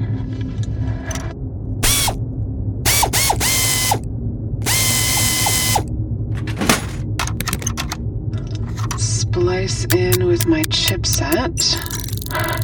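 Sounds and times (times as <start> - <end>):
steady low mechanical hum: 0.0 - 12.6
ratchet tool clicking while removing a control panel from a terminal: 1.8 - 2.2, 2.9 - 4.0, 4.6 - 5.9, 7.2 - 8.0, 9.9 - 12.6
speech: 9.7 - 11.9.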